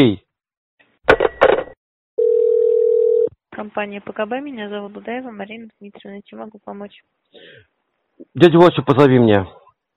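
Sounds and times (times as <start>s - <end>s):
speech: 0.0s - 0.2s, 3.8s - 9.6s
telephone dial tone while calling a personal number: 2.2s - 3.3s.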